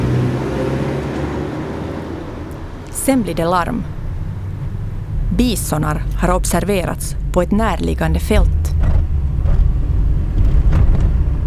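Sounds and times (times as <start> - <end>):
cars driving in a convoy over bumpy dirt roads: 0.0 - 11.4
speech: 3.1 - 4.0, 5.4 - 8.6.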